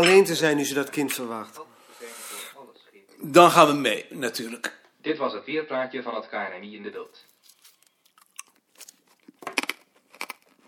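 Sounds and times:
speech: 0.0 - 1.7, 3.2 - 7.3
crunchy chewing of peppermint candy: 7.4 - 10.6.

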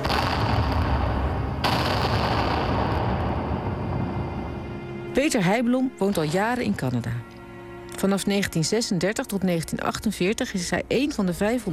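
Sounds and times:
heavy anti-aircraft guns booming in a barrage: 0.0 - 4.6
sharp blast: 0.0 - 5.2
speech: 5.2 - 7.3, 8.0 - 11.7.

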